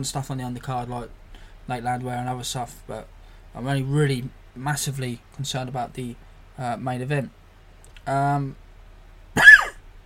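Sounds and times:
speech: 0.0 - 7.4, 8.0 - 8.6
ill person coughing: 9.4 - 9.8.

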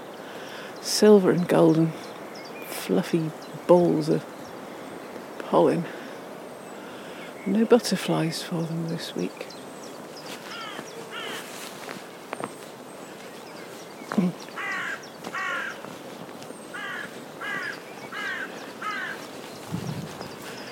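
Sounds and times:
speech: 0.8 - 2.1, 2.9 - 4.3, 5.5 - 6.0, 7.4 - 9.6
faint rustling: 10.0 - 20.7
crows cawing while fighting in pine treetops: 10.5 - 11.5, 14.5 - 15.9, 16.7 - 19.3.

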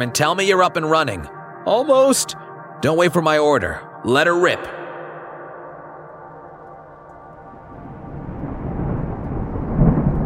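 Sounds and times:
speech: 0.0 - 4.8
constant storm roar: 7.2 - 10.2
deep rolling thunder with a heavy low boom: 7.4 - 10.2.

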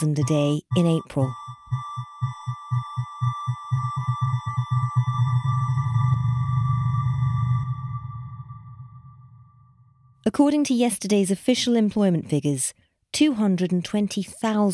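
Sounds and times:
speech: 0.0 - 1.4, 10.3 - 14.7
low electronic beats sonifying job losses: 0.0 - 9.5
steady high tones: 0.0 - 10.2.

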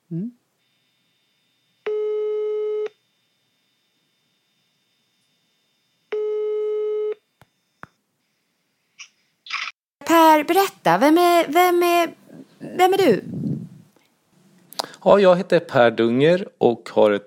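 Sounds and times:
speech: 0.1 - 0.4, 10.4 - 13.3, 15.0 - 17.2
outgoing call telephone ringing tone beeps: 1.0 - 3.1, 6.1 - 7.2.

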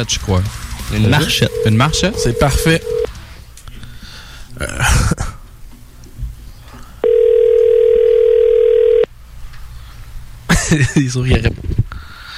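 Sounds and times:
speech: 0.0 - 3.0, 4.6 - 5.1, 10.7 - 11.8
telephone ringback tone: 1.0 - 3.1, 7.0 - 9.1.

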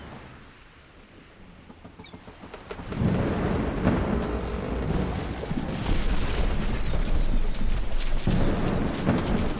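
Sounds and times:
deep rumbling thunder: 2.8 - 9.5
steady heavy rain in a thunderstorm: 2.8 - 9.5.

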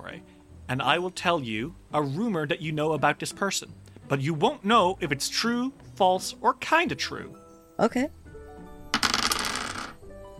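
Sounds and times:
speech: 0.2 - 8.2
dice rolling on a hard tabletop: 9.0 - 10.0.

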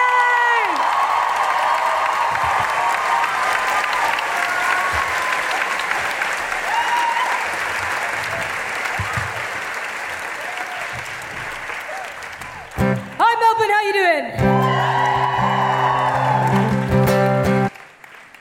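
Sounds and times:
audience applause for a comedian at a live show in Melbourne: 0.0 - 18.3.

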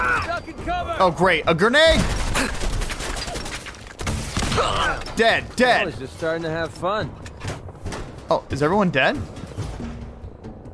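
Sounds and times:
speech: 0.5 - 2.7, 4.6 - 7.2, 8.3 - 9.4
rapid gunfire from a big gun in a video game fired at a raider den: 1.9 - 3.7.

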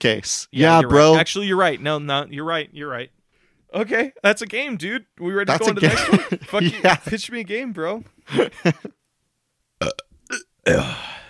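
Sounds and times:
speech: 0.0 - 9.0, 9.8 - 11.2
laughter: 5.6 - 7.2, 8.3 - 8.9
loud burps: 9.8 - 11.2.

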